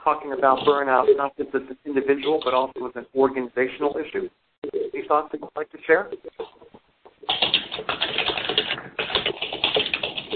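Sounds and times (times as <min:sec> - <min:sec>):
speech: 0:00.0 - 0:06.5
typing on a computer keyboard: 0:07.2 - 0:10.3.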